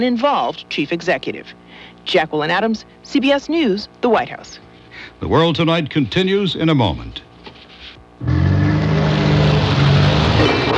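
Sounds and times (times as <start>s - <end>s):
speech: 0.0s - 7.3s
car braking sound effect with engine and tire noise: 8.2s - 10.7s.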